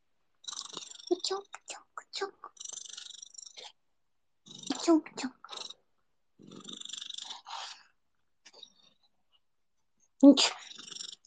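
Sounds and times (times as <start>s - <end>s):
female cat purring into the microphone: 0.4s - 3.8s, 4.4s - 7.9s, 10.4s - 11.2s
speech: 1.2s - 2.6s, 4.8s - 5.4s, 10.2s - 10.6s.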